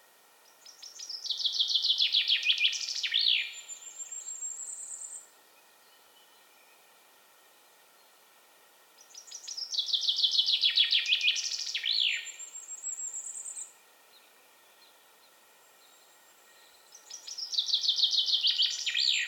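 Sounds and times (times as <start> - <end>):
common chaffinch Fringilla coelebs singing a falling run of bright notes: 0.4 - 5.3, 9.0 - 19.2.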